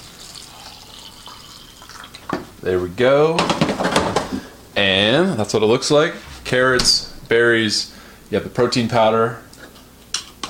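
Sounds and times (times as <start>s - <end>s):
stream of water pouring into a blender holding carrots, berries and protein powder: 0.0s - 2.3s
speech: 2.6s - 3.7s, 4.3s - 9.4s.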